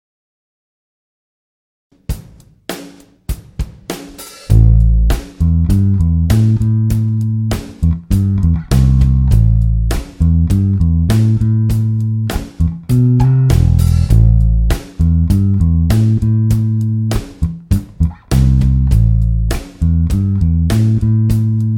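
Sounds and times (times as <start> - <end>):
A minor 9 groove: 4.5 - 21.7.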